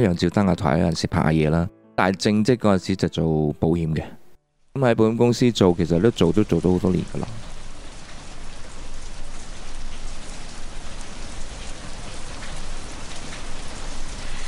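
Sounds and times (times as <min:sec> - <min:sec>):
speech: 0:00.0 - 0:04.2, 0:04.8 - 0:07.4
steady rain pattering on a surface: 0:05.2 - 0:14.4.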